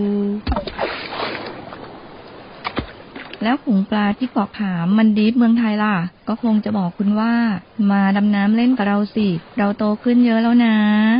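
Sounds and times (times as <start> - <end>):
ocean waves on white sand shore of Hat Sai Kaew beach: 0.7 - 3.8
speech: 3.4 - 11.1.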